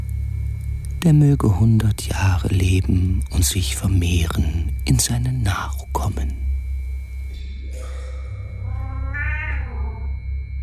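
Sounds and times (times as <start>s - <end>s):
steady low hum: 0.0s - 10.6s
speech: 1.0s - 6.5s
cat meowing: 8.6s - 10.2s.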